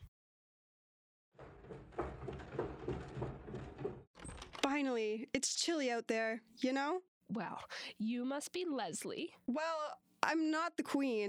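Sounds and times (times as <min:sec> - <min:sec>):
small repeated knocks of wood: 0:01.4 - 0:04.1
rattling movement of a door: 0:01.4 - 0:04.6
front door being pulled open and creaking: 0:01.4 - 0:04.8
speech: 0:04.8 - 0:11.2.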